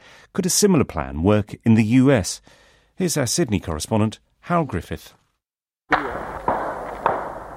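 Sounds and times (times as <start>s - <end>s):
speech: 0.4s - 5.2s
gunshots with tail: 5.9s - 7.5s.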